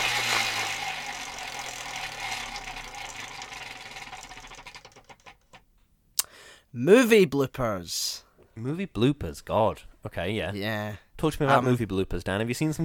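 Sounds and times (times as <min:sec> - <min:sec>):
prize wheel spinning with ticking clatter: 0:00.0 - 0:05.6
speech: 0:06.8 - 0:12.8.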